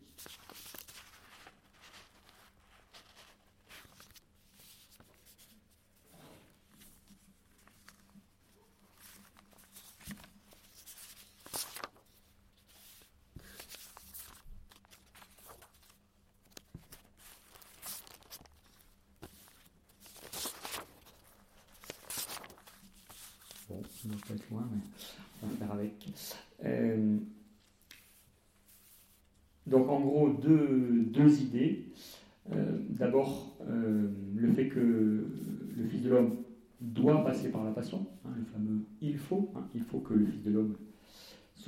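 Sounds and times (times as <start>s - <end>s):
papers being shuffled and rummaged through: 0.0s - 26.2s
speech: 24.1s - 27.3s, 29.7s - 41.6s.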